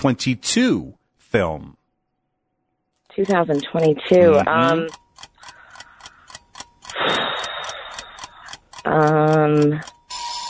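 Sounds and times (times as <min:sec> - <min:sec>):
speech: 0:00.0 - 0:01.8, 0:03.2 - 0:05.0, 0:08.8 - 0:09.9
quiz countdown timer ticking: 0:03.1 - 0:10.4
loud harsh quiz buzzer: 0:10.1 - 0:10.4.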